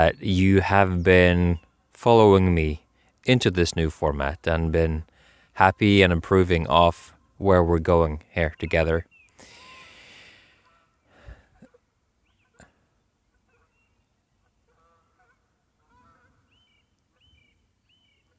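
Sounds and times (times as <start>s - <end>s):
speech: 0.0s - 9.1s
birds chirping outdoors: 0.0s - 18.3s
faint noise: 0.0s - 18.3s
birds making honking goose-like calls outdoors: 14.4s - 16.5s.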